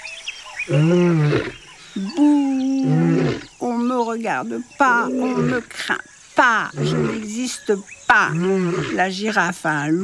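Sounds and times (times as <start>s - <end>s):
lion roaring: 0.7s - 1.6s, 2.7s - 3.5s, 5.0s - 5.7s, 6.7s - 7.3s
speech: 0.7s - 10.0s.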